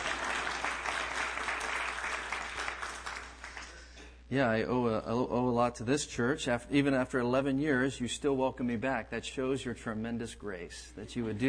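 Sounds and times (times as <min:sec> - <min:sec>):
audience clapping: 0:00.0 - 0:03.9
speech: 0:04.3 - 0:11.4.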